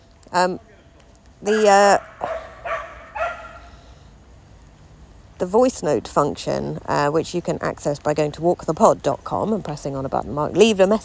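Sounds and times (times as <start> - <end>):
speech: 0.3 - 0.7, 1.4 - 2.3, 5.4 - 11.0
dog barking in a park: 2.0 - 3.7.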